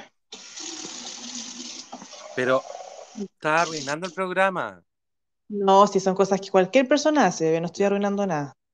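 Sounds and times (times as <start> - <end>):
water pouring into a container: 0.3 - 4.0
speech: 2.4 - 4.9, 5.5 - 8.6.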